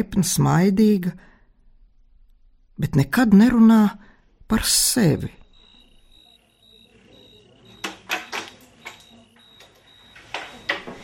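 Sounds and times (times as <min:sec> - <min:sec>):
speech: 0:00.0 - 0:01.3, 0:02.8 - 0:05.4
Novus board game pieces clicking against each other: 0:07.8 - 0:09.1.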